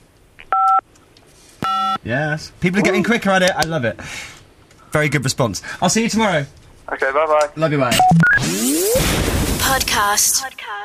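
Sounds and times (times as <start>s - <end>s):
telephone keypad tone as a phone button is pressed: 0.5s - 0.8s, 1.6s - 2.0s
speech: 2.0s - 8.8s, 9.7s - 10.8s.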